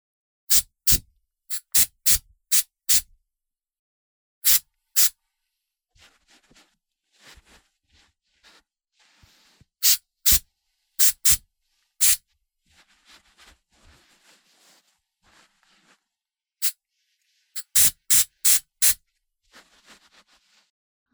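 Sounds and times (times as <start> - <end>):
aerosol hair spray spritzes hissing: 0.5 - 3.0, 4.4 - 5.1, 9.8 - 10.4, 11.0 - 11.4, 12.0 - 12.2, 17.6 - 19.0.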